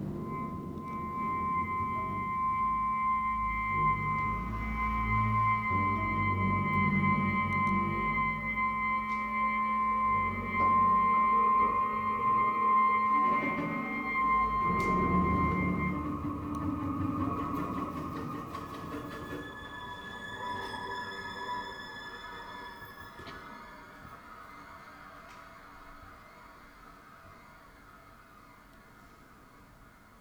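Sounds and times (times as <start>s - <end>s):
clarinet multiphonics: 0.0s - 23.6s.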